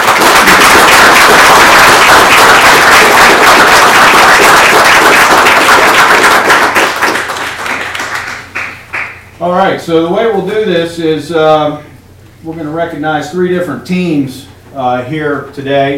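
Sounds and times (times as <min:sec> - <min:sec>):
crowd applauding: 0:00.0 - 0:09.2
speech: 0:09.6 - 0:15.9.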